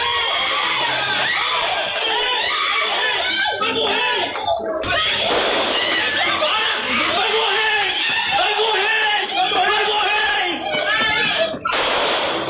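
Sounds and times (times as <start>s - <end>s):
laughter: 0.0s - 11.8s
several voices shouting and screaming: 0.0s - 12.4s
gunshots: 5.2s - 6.0s, 11.7s - 12.4s.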